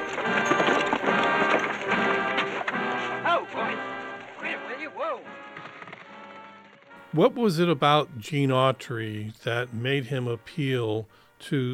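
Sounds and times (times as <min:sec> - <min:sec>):
horse hooves clip-clopping: 0:00.0 - 0:07.1
speech: 0:07.1 - 0:11.7.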